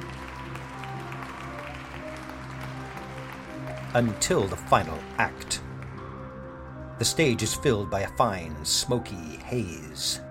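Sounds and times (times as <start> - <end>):
crowd applauding: 0.0 - 7.4
speech: 3.9 - 5.7, 7.0 - 10.2.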